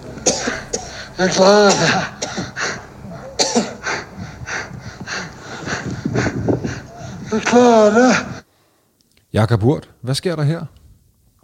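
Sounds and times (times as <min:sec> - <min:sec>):
man breathing heavily on the summit of Mount Everest: 0:00.5 - 0:01.2, 0:01.8 - 0:08.9
speech: 0:01.2 - 0:02.5, 0:07.3 - 0:08.3, 0:09.3 - 0:10.8.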